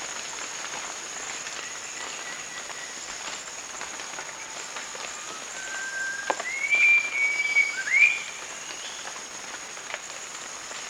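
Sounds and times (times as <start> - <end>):
hiss of forest background at Danum: 0.0 - 10.8
rufous-crowned babbler giving long clear whistles at Danum: 5.5 - 8.3.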